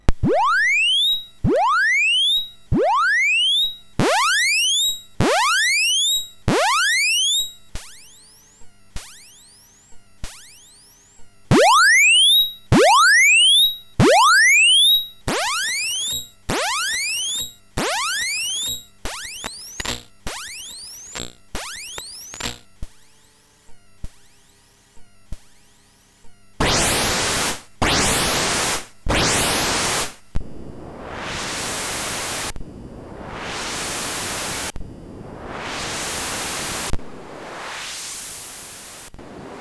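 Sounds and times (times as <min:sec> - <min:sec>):
MOS 6581R3 SID chip distortion on the saw and pulse filter: 0:00.1 - 0:22.9, 0:26.6 - 0:39.6.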